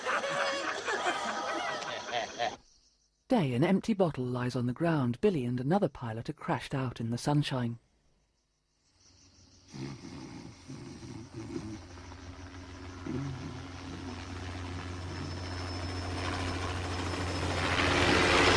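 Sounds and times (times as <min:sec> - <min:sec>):
laughter: 0:00.0 - 0:02.6
speech: 0:03.3 - 0:07.8, 0:09.7 - 0:10.1
helicopter flying overhead: 0:10.6 - 0:18.5.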